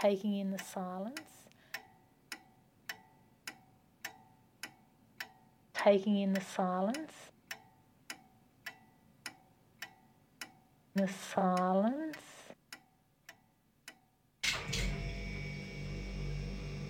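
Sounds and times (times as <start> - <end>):
speech: 0.0 - 1.4, 5.8 - 7.3, 11.0 - 12.3
clock ticking: 0.0 - 14.2
refrigerator humming with a faint high whine: 14.4 - 16.8.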